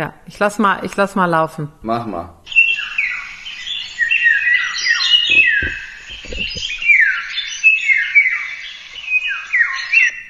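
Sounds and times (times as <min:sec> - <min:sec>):
speech: 0:00.0 - 0:02.6
recorded bird song of clear fluting whistles: 0:02.5 - 0:10.2
low dull thumps: 0:05.3 - 0:06.8.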